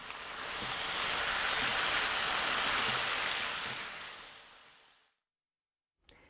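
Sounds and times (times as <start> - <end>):
sauce simmering and reducing in a frying pan: 0.0 - 5.1.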